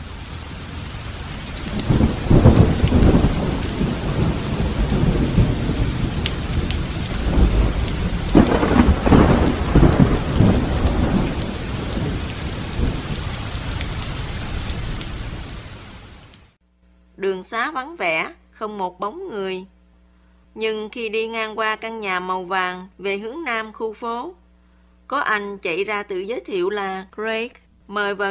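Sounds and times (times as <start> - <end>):
deep rolls of thunder: 0.0 - 16.0
heavy rain pouring: 0.0 - 16.6
speech: 17.6 - 19.8, 20.6 - 24.4, 25.1 - 28.3.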